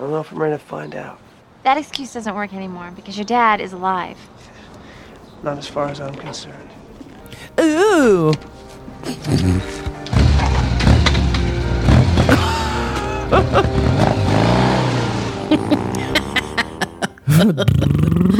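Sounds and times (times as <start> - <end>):
speech: 0.0 - 4.6, 5.4 - 6.8, 7.6 - 9.8, 17.4 - 18.3
motorcycle engine revving: 9.2 - 17.0
heavy thuds and bangs: 10.1 - 12.5
laughter: 12.3 - 14.0, 15.4 - 18.3.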